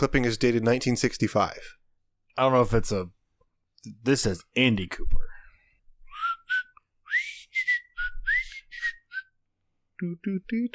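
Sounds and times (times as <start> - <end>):
speech: 0.0 - 1.8, 2.4 - 3.2, 3.8 - 5.3, 10.0 - 10.7
person whistling into the microphone: 6.1 - 9.4.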